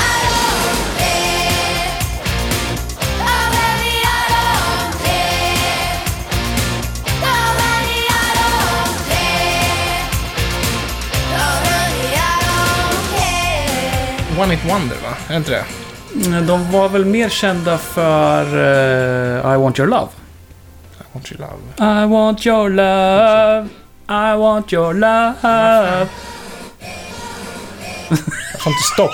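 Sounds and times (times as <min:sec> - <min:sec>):
1989 pop-rock song with drums, bass and electric guitars: 0:00.0 - 0:15.0
speech: 0:14.4 - 0:20.2, 0:21.2 - 0:26.3, 0:28.1 - 0:29.1
laughter: 0:28.0 - 0:29.1.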